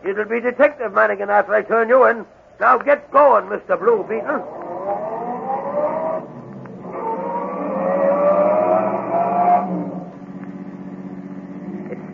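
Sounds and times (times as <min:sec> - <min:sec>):
speech: 0:00.1 - 0:04.7
car engine revving and pulling away: 0:03.9 - 0:12.1.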